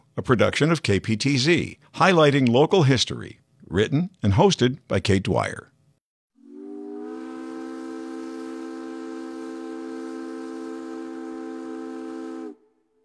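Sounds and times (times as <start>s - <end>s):
speech: 0.2s - 5.7s
ferry steam whistle blast with chord-like tone and breathy hiss: 6.4s - 13.0s.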